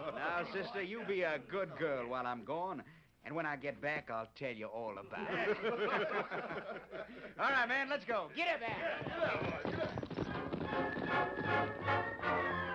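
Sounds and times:
laughter: 0.0s - 2.1s, 5.1s - 7.4s
speech: 0.4s - 10.0s
horses ridden by horsemen clopping: 8.4s - 12.6s.

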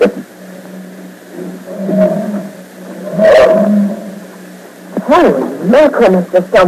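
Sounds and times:
steady low rumble at a circus big top: 0.0s - 6.6s
deep animal roars at a circus big top: 1.3s - 4.3s
speech: 5.1s - 6.6s.

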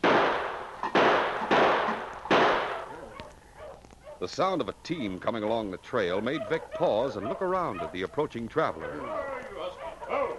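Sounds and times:
six-shooter revolver shots fired at a tin can in the snow: 0.0s - 2.9s
speech: 4.2s - 9.2s.

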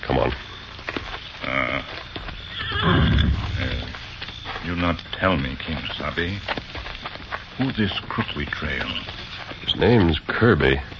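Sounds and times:
speech: 0.1s - 0.5s, 4.7s - 6.7s, 7.6s - 10.9s
hoof clops: 0.2s - 10.9s
horse whinnying as it is reined to a halt: 2.5s - 3.9s
low rumbling background: 2.8s - 4.6s.

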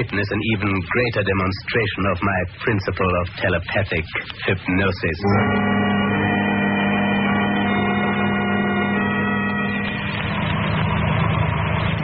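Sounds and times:
speech: 0.0s - 5.8s
car engine idling as car pulls over to the curb: 7.1s - 12.0s.

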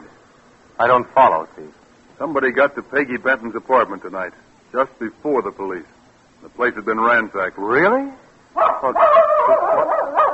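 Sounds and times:
speech: 0.8s - 10.2s
female dog giving a drawn-out whining bark: 8.6s - 10.3s.

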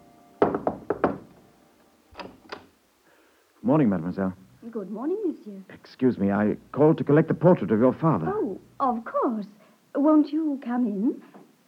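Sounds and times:
firm knocks on a wooden door: 0.4s - 1.4s
speech: 3.7s - 11.4s.

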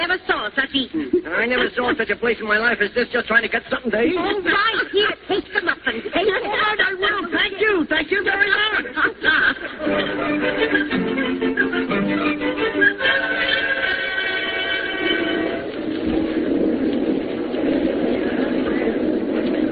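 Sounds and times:
speech: 0.0s - 11.4s
laughter: 0.8s - 2.2s, 4.0s - 14.7s
subway train rumbling heard from inside: 8.2s - 19.7s.

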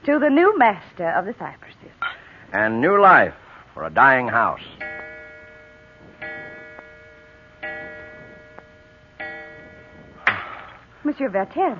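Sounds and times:
speech: 0.0s - 1.6s, 2.5s - 4.8s, 11.1s - 11.7s
clock striking: 4.0s - 10.9s
faint clock ticking: 4.1s - 11.7s.

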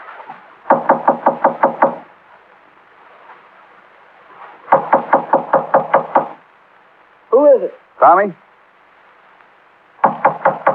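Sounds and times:
police knocking on a door: 0.7s - 2.0s, 4.7s - 6.4s, 10.0s - 10.7s.

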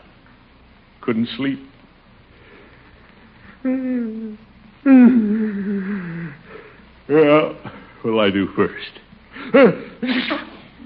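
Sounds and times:
speech: 1.0s - 1.7s, 3.6s - 6.0s, 7.1s - 10.5s
person with a cold sneezing: 9.4s - 10.8s.

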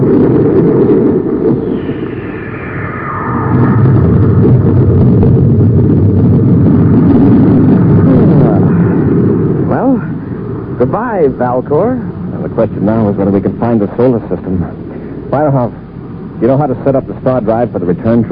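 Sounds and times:
spaceship rockets firing: 0.0s - 11.0s
speech: 10.9s - 15.8s, 16.4s - 18.3s.

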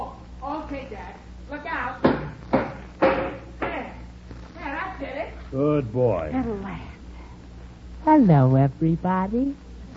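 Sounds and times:
speech: 0.7s - 2.4s, 5.5s - 6.9s, 8.0s - 9.6s
knocks on a wooden bathroom door knocking out a sawed wood piece: 2.0s - 3.8s.

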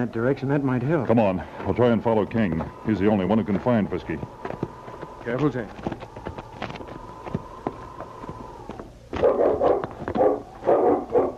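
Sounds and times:
speech: 0.0s - 4.5s, 5.2s - 6.0s
dog barking in loud bursts: 9.1s - 11.3s.

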